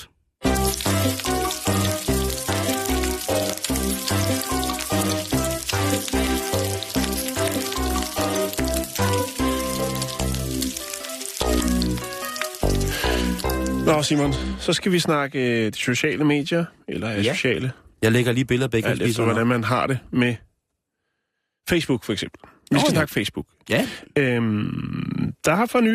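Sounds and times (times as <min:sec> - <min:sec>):
very fatty bacon sizzling in a frying pan: 0:00.4 - 0:14.2
speech: 0:14.0 - 0:20.5, 0:21.7 - 0:25.9.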